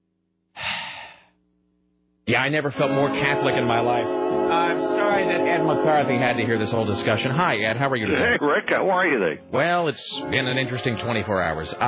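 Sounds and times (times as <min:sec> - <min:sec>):
person taking a deep breath: 0:00.6 - 0:01.4
speech: 0:02.3 - 0:11.8.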